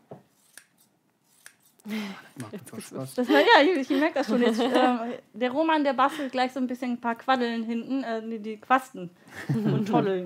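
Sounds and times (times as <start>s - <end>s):
scissors snipping through stiff faux leather: 0.3s - 1.8s
speech: 1.9s - 10.2s
laughter: 2.4s - 5.2s, 9.4s - 10.2s.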